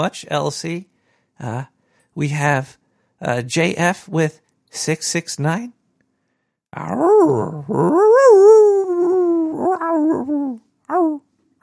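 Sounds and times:
speech: 0.0 - 5.8, 6.7 - 8.7, 9.5 - 11.6
man howling like a wolf: 6.8 - 11.2.

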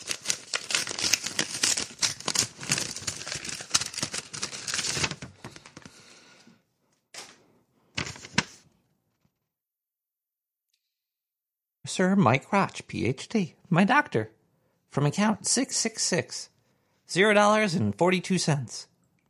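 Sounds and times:
paper envelope holding a check being torn open: 0.0 - 5.9, 8.0 - 8.6
paper rustling: 0.0 - 6.0, 7.2 - 8.7
speech: 12.0 - 16.5, 17.1 - 18.9.

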